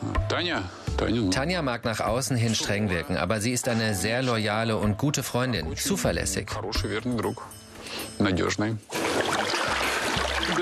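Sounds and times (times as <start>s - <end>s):
speech: 0.3s - 9.0s
hot water poured into a person's ears: 8.9s - 10.6s.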